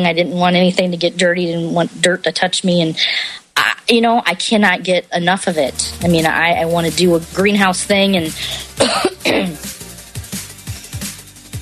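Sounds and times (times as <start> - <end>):
speech: 0.0 - 9.7
person coughing: 8.6 - 9.7
throat clearing: 8.8 - 9.6.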